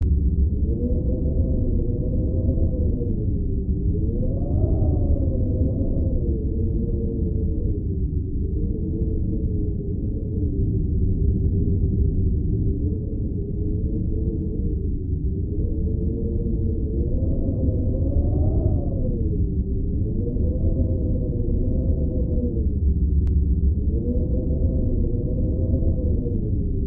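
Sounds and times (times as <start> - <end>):
heavy wind ambience: 0.0 - 26.8.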